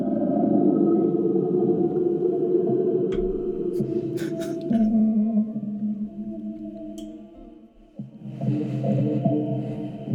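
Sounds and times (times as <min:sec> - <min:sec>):
eerie drawn-out whale-like calls of an Elasmosaurus: 0:00.0 - 0:07.7
murky underwater wash: 0:00.0 - 0:10.1.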